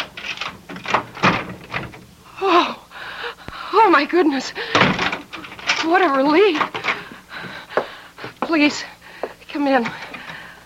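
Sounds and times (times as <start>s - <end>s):
door chain lock clicks and rattles: 0.0s - 2.1s, 4.7s - 7.0s
speech: 3.9s - 5.0s, 5.8s - 6.9s, 8.5s - 8.9s, 9.6s - 10.0s.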